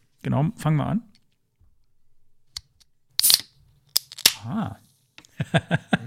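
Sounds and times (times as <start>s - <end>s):
speech: 0.2s - 1.1s, 4.4s - 4.8s, 5.4s - 6.0s
lemonade bottle cap snapping: 3.2s - 4.4s
laughter: 5.3s - 6.0s.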